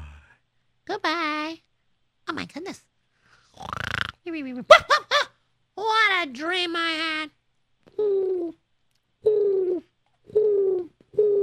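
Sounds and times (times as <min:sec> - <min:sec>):
speech: 0:00.9 - 0:01.7, 0:02.3 - 0:02.9, 0:03.6 - 0:08.6
two young doves cooing on a windowsill: 0:08.0 - 0:08.6, 0:09.2 - 0:11.4.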